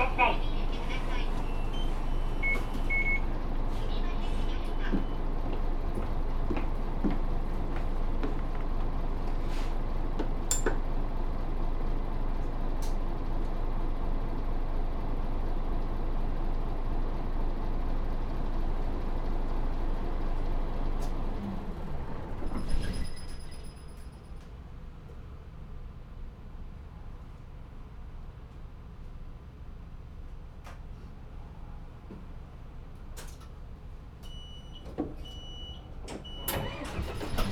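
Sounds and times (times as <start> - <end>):
large city bus engine idling at a stop: 0.0 - 37.5
short electronic beeps: 1.4 - 3.3.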